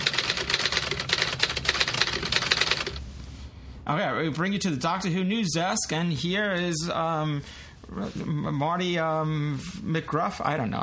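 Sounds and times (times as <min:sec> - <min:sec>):
typewriter keystrokes: 0:00.0 - 0:03.0
speech: 0:04.2 - 0:10.8.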